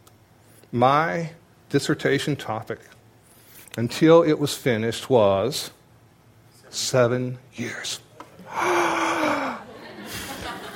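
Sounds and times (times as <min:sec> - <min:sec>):
speech: 0:00.7 - 0:03.0, 0:03.7 - 0:05.8, 0:06.7 - 0:08.8
faint breathing: 0:08.4 - 0:09.8
man exhaling softly: 0:08.5 - 0:09.7
man gasping: 0:08.5 - 0:09.7
laughter: 0:09.2 - 0:10.7.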